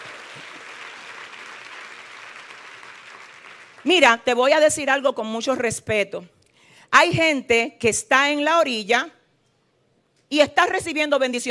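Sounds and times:
congregation applauding: 0:00.0 - 0:03.9
speech: 0:03.8 - 0:09.2, 0:10.3 - 0:11.4.

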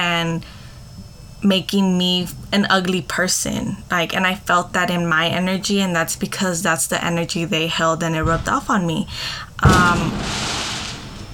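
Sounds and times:
speech: 0:00.0 - 0:00.6, 0:01.4 - 0:10.5
rumbling echo of a firework bang: 0:08.2 - 0:11.3
firework bang outdoors in a neighborhood: 0:09.6 - 0:11.3.

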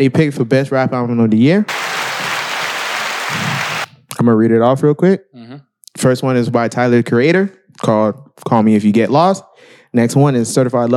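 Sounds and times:
speech: 0:00.0 - 0:01.8, 0:04.2 - 0:05.3, 0:06.0 - 0:10.9
dense applause of many hands clapping: 0:01.7 - 0:03.9.

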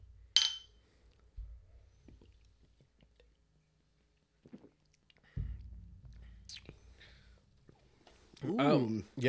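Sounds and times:
glass clink from a toast: 0:00.4 - 0:00.7
people sipping light low-malt beer: 0:02.1 - 0:05.4, 0:06.4 - 0:07.1
low thumps: 0:05.3 - 0:07.8
speech: 0:08.4 - 0:09.2.

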